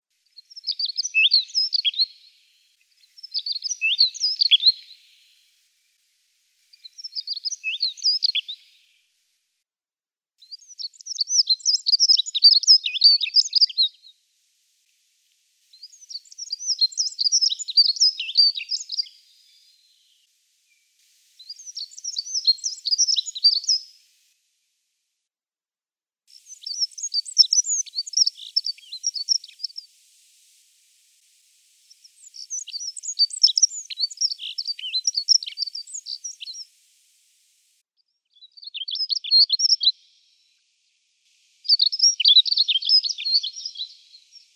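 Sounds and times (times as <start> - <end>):
Prunella modularis singing: 0.0 - 5.5, 6.7 - 9.0, 10.4 - 14.2, 15.7 - 24.1, 26.3 - 30.0, 31.8 - 36.8, 37.8 - 40.1, 41.2 - 44.5.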